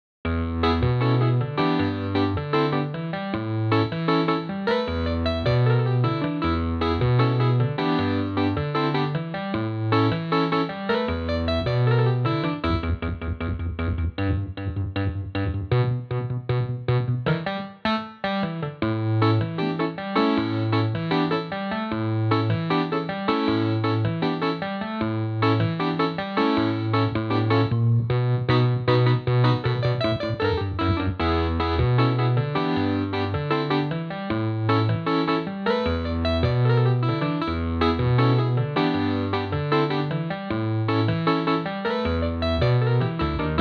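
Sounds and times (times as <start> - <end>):
electric piano: 0.3 - 43.5.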